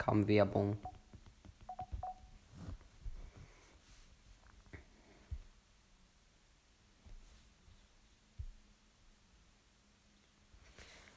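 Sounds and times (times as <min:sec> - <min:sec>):
speech: 0:00.0 - 0:00.9
hiss: 0:00.0 - 0:11.1
telephone keypad tones: 0:01.7 - 0:02.3.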